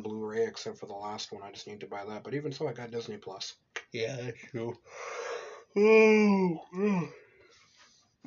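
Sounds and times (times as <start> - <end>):
speech: 0.4 - 7.2
person yawning: 5.1 - 7.2.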